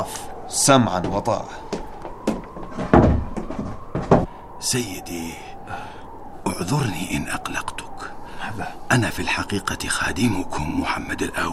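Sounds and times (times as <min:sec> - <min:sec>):
speech: 0:00.0 - 0:01.7, 0:04.6 - 0:06.0, 0:06.6 - 0:07.8, 0:08.5 - 0:11.5
wooden door being shut: 0:02.2 - 0:04.3.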